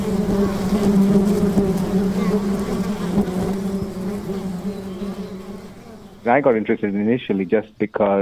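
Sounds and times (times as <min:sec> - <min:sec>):
hanging swarm of bees buzzing: 0:00.0 - 0:08.2
speech: 0:06.3 - 0:08.2.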